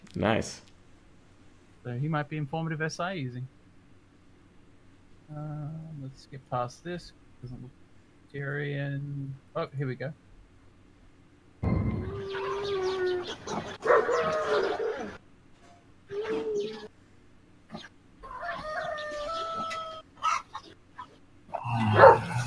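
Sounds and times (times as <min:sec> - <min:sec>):
speech: 0:00.2 - 0:00.7, 0:01.8 - 0:03.6, 0:05.3 - 0:10.2
dogs whining and howling: 0:12.0 - 0:15.2, 0:18.2 - 0:20.7, 0:21.5 - 0:22.3
dogs barking and yelping in a dog pen: 0:13.2 - 0:15.2, 0:19.6 - 0:22.3.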